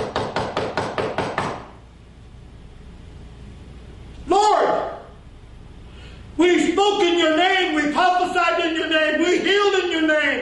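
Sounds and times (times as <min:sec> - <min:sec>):
knocking on a door: 0:00.0 - 0:01.7
speech: 0:06.4 - 0:10.4.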